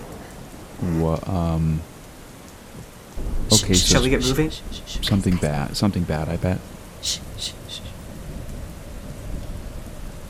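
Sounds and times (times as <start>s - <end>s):
steady heavy rain pouring down: 0.0s - 10.2s
speech: 0.8s - 1.9s, 3.2s - 7.9s
brief high chirps: 3.2s - 5.4s, 7.0s - 8.0s
deep continuous rumble of thunder: 3.2s - 10.2s.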